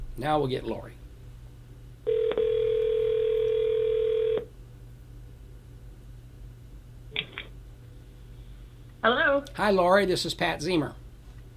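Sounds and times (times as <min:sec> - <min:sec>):
speech: 0:00.2 - 0:01.0, 0:09.0 - 0:11.0
telephone dial tone: 0:02.1 - 0:04.5.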